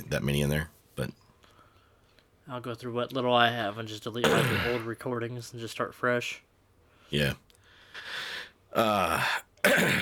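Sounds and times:
speech: 0.0 - 1.2, 2.5 - 6.5, 7.1 - 7.4, 8.0 - 9.9
person clearing throat: 4.2 - 4.9, 8.8 - 9.9.

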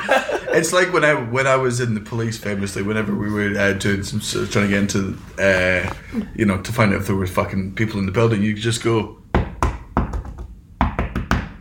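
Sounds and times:
laughter: 0.0 - 0.9
speech: 0.6 - 9.2
knocking on a hard surface: 9.4 - 11.5.

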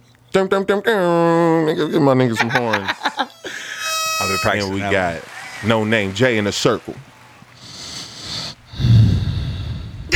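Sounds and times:
speech: 0.4 - 3.0, 4.3 - 7.1
laughter: 1.0 - 8.7
heavy breaths blown straight into a microphone: 3.4 - 4.0, 4.6 - 10.1.

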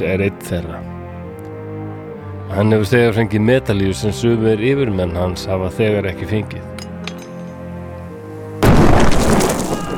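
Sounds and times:
speech: 0.0 - 1.0, 2.5 - 6.7
wartime explosion showering rocks and sand: 8.6 - 9.9.

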